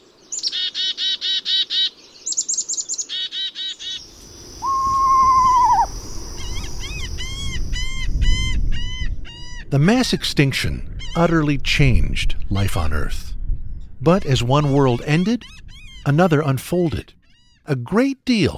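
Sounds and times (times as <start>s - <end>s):
birds chirping and singing: 2.0s - 10.2s, 13.4s - 17.7s
speech: 9.8s - 13.3s, 14.0s - 18.5s.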